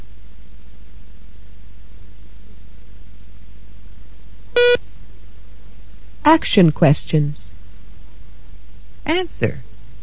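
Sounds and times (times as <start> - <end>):
faint hum: 0.0 - 10.0
telephone keypad beep from dialing a number in a hotel room in London: 4.6 - 4.8
speech: 6.3 - 7.6, 9.1 - 9.6.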